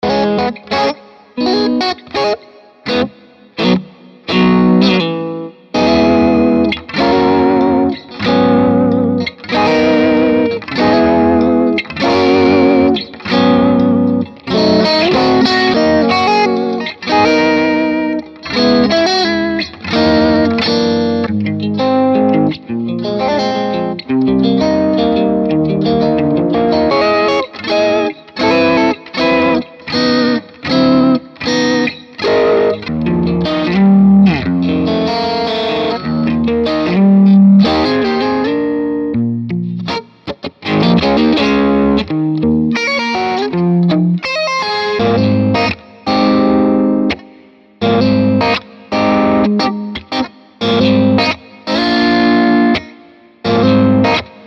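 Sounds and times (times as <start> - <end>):
jazzy blue guitars: 0.0 - 54.4.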